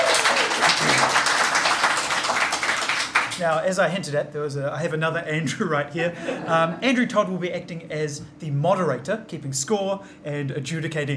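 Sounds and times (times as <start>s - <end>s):
live audience applause: 0.0s - 3.5s
speech: 3.4s - 11.1s.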